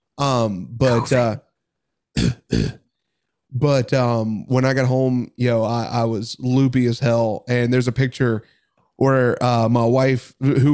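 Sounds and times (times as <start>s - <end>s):
speech: 0.2s - 1.5s, 2.2s - 2.8s, 3.5s - 10.7s
person clearing throat with rough voiced rasps: 2.2s - 2.8s
person coughing sharply: 2.2s - 2.8s.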